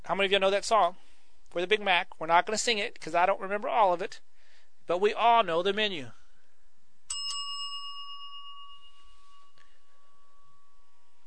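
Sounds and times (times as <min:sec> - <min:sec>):
speech: 0:00.1 - 0:04.3, 0:04.9 - 0:06.2
bright bell dinging with a metallic ring: 0:07.1 - 0:11.2.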